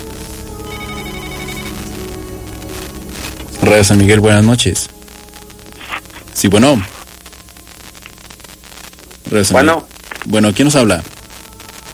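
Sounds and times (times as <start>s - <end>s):
telephone bell ringing with an incoming call on a radio call-in line: 0.6s - 1.9s
speech: 3.6s - 5.0s, 6.4s - 7.0s, 9.3s - 11.1s.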